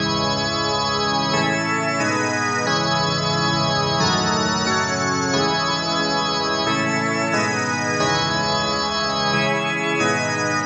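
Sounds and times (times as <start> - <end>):
synth pipe organ melody with drifting pitch: 0.0 - 10.6.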